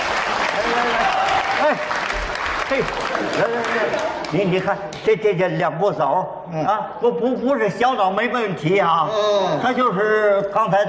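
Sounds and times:
audience applause at a live stage show: 0.0 - 4.6
speech: 1.6 - 10.8.

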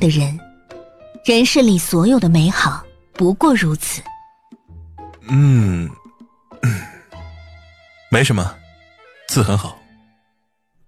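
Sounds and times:
speech: 0.0 - 0.5, 1.2 - 4.1, 5.3 - 6.0, 8.1 - 8.6, 9.3 - 9.8
person clearing throat: 5.3 - 6.0, 6.6 - 7.0.

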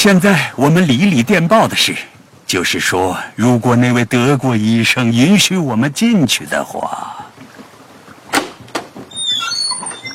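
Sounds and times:
speech: 0.0 - 7.2
door latch clicks: 8.3 - 9.0
door hinge creaking: 8.3 - 10.1.

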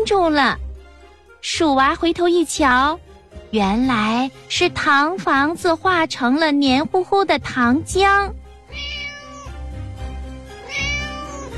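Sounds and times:
speech: 0.0 - 0.6, 1.4 - 8.9
old tabby cat meowing on top of a wall: 8.7 - 9.6, 10.6 - 11.5.

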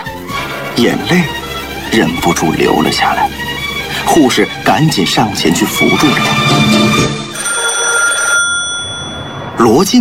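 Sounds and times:
speech: 0.8 - 3.4, 4.1 - 7.2, 9.6 - 9.9
desk telephone ringing urgently in an office: 7.3 - 9.4.

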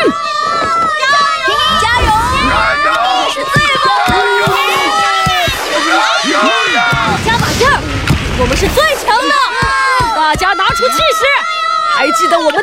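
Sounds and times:
spectators at a ball match cheering on two teams: 0.0 - 12.6.

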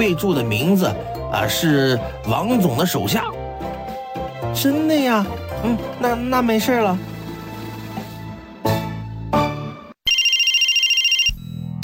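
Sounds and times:
speech: 0.0 - 3.4, 4.6 - 7.1
music: 0.0 - 10.0, 11.4 - 11.8
mobile phone ringtone chiming in a fast pulsing electronic pattern: 10.1 - 11.4.

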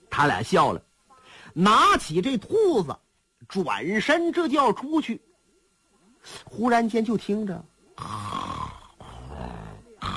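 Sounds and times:
speech: 0.2 - 0.9, 1.5 - 5.3, 6.2 - 8.5
person snoring behind a curtain beneath a shrine inside a temple: 8.0 - 10.1.

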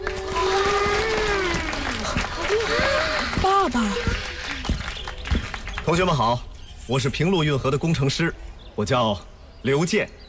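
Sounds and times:
children's audience applauding: 0.0 - 6.2
speech: 5.9 - 10.2.

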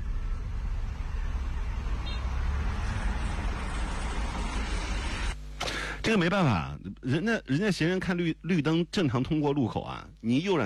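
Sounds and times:
dense traffic roar at a busy intersection: 0.0 - 5.5
low engine rumble: 0.0 - 5.6
speech: 6.1 - 10.6.

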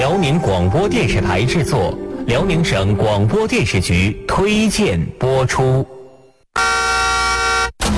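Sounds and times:
speech: 0.2 - 6.0
car horn blaring in city traffic: 6.6 - 7.8.

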